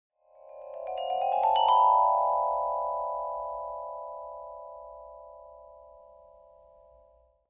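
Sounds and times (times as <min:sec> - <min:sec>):
vibraphone ascending played with mallets: 0:00.4 - 0:04.8.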